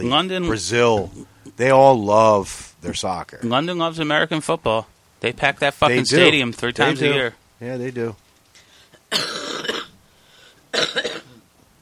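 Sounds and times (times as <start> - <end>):
speech: 0.0 - 8.2, 9.1 - 9.4
harsh chesty coughs: 9.0 - 10.0, 10.7 - 11.4.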